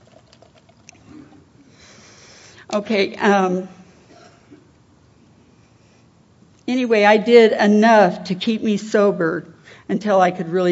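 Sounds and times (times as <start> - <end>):
drinking water pouring into a cup: 0.0 - 1.1
speech: 2.7 - 3.8, 6.7 - 10.7.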